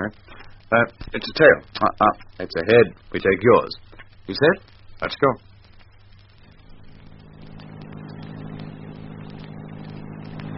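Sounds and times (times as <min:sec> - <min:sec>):
speech: 0:00.0 - 0:05.5
car engine humming as the vehicle drives: 0:06.5 - 0:10.5.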